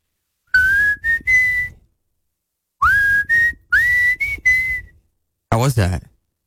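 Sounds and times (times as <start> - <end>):
person whistling a rock song melody: 0.5 - 1.9, 2.8 - 5.1
speech: 5.7 - 6.1.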